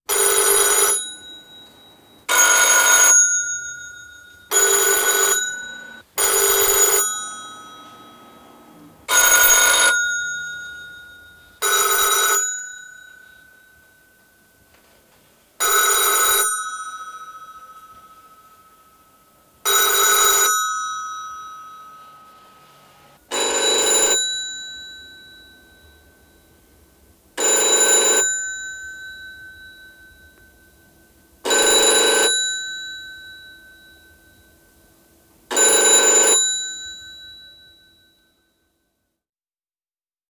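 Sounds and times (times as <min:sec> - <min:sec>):
telephone with various rings: 0:00.1 - 0:14.8, 0:15.6 - 0:34.6, 0:35.5 - 0:37.8.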